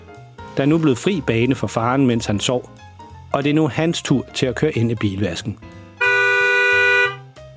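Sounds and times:
speech: 0.6s - 5.8s
car horn honking from car behind at a car wash: 6.0s - 7.2s.

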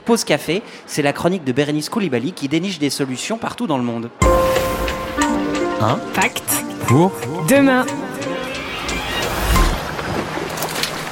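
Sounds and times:
speech: 0.1s - 5.0s, 5.8s - 8.0s
ocean waves washing and crashing: 4.2s - 11.1s.

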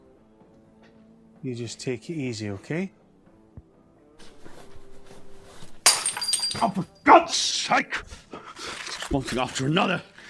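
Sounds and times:
speech: 1.4s - 3.0s, 6.6s - 8.3s, 9.1s - 10.1s
glass smashing: 5.8s - 7.0s
glass shards tinkling and scattering: 5.9s - 7.2s.

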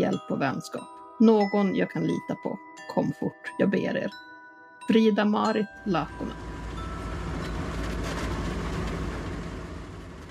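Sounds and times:
speech: 0.2s - 4.3s, 4.9s - 6.5s
small bus engine drone and road rumble from Gällivare to Tärendö: 5.8s - 10.3s
faint rattles inside a moving small bus: 6.1s - 10.3s.

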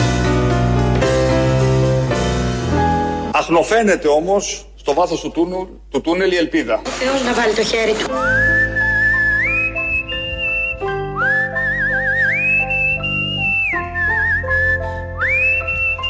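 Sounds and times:
sustained musical backing: 0.0s - 3.6s, 6.9s - 16.0s
speech: 3.4s - 8.8s
melodic whistling: 8.1s - 16.0s.

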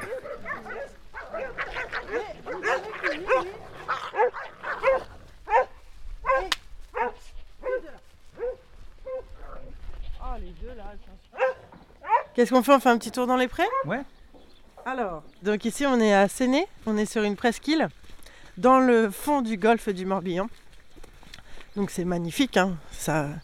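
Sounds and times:
Border collies barking, yipping and whining while herding goats: 0.0s - 9.6s, 11.3s - 12.4s, 13.6s - 14.0s
speech: 12.4s - 14.2s, 14.9s - 18.0s, 18.6s - 20.6s, 21.8s - 23.4s.

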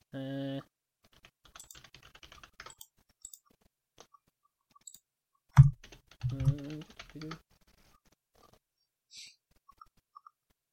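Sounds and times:
typing on a computer keyboard: 1.1s - 3.4s, 5.6s - 7.4s
person speaking: 6.2s - 7.5s.

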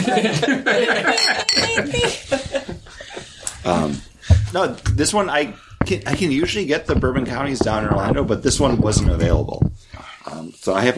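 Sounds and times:
laughter of friends: 0.0s - 3.6s
speech: 0.1s - 2.4s, 3.6s - 10.9s
beer glasses clinking in a toast: 1.1s - 1.9s.

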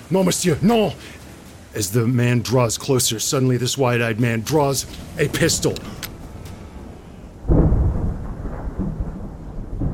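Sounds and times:
speech: 0.1s - 6.1s
thunder rumbling: 4.9s - 9.9s.

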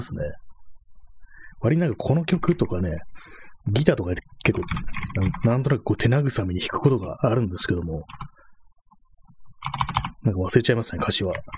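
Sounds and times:
speech: 0.0s - 0.5s, 1.6s - 8.4s, 9.6s - 11.5s
typing on a computer keyboard: 4.5s - 5.6s, 8.0s - 8.3s, 9.6s - 10.2s, 11.2s - 11.5s.

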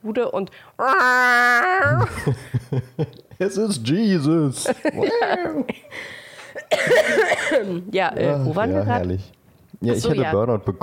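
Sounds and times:
speech: 0.1s - 10.8s
laughter: 1.9s - 3.3s, 4.6s - 6.0s
hacking coughs: 6.6s - 7.8s.

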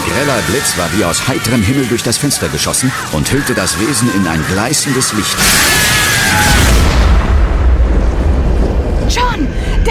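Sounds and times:
speech: 0.2s - 6.9s
loud explosion: 5.3s - 9.8s
heavy sustained low rumble: 6.3s - 9.8s.

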